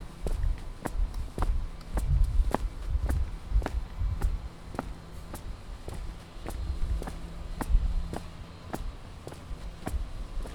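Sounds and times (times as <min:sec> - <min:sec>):
footsteps walking: 0:00.2 - 0:10.5.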